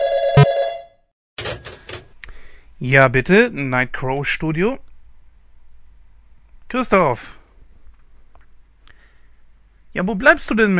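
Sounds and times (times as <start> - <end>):
loud telephone bell ringing: 0.0 - 1.0
clattering rattling bursts: 1.4 - 2.2
speech: 2.8 - 4.9, 6.7 - 7.4, 10.0 - 10.7.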